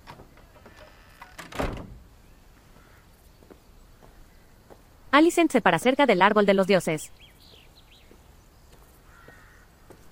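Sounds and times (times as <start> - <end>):
door opening onto a garden with a soft rattle and scrape: 0.0 - 2.1
speech: 5.2 - 7.3.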